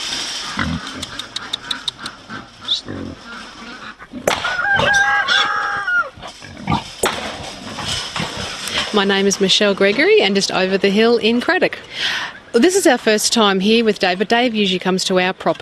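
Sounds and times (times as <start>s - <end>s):
piglet squealing on a farm property: 0.5s - 6.2s
speech: 0.6s - 1.2s, 9.0s - 15.5s
clicks: 1.0s - 2.2s.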